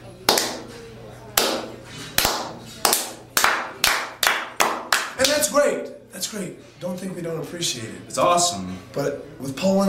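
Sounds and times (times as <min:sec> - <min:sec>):
single pair of hands clapping sharply: 0:00.3 - 0:00.8, 0:01.4 - 0:05.5
speech: 0:05.5 - 0:09.8.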